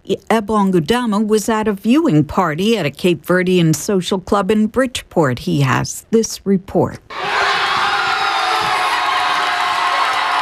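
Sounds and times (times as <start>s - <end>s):
speech: 0.1s - 7.5s
crowd cheering at a packed social club after a World Cup goal: 7.1s - 10.3s
loud dense whoops and shouting: 7.1s - 10.3s.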